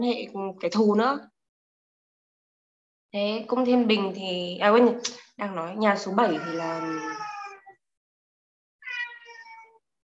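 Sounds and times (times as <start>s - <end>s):
speech: 0.0s - 1.3s, 3.1s - 7.3s
cat meowing: 6.3s - 7.8s, 8.8s - 9.8s.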